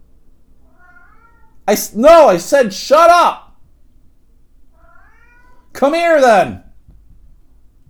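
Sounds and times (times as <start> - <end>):
domestic cat meowing loudly: 0.6 - 1.7, 4.7 - 5.8
speech: 1.7 - 3.4, 5.8 - 6.6.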